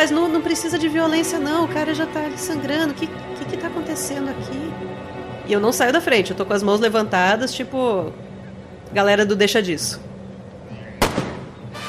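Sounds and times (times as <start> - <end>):
speech: 0.0 - 8.3, 8.9 - 10.1
gunshot sound effect: 11.0 - 11.8.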